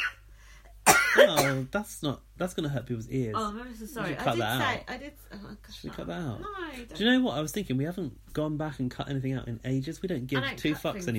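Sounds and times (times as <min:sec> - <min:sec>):
single loud harsh cough: 0:00.9 - 0:01.7
speech: 0:01.2 - 0:11.1.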